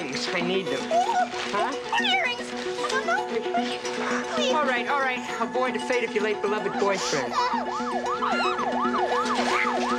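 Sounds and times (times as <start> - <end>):
speech: 0.3 - 9.0
police car siren wailing: 6.5 - 9.9.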